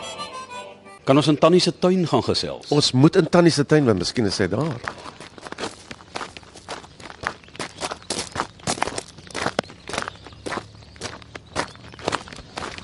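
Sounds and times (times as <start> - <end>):
speech: 1.1 - 5.2
footsteps walking into a garden: 4.0 - 12.8.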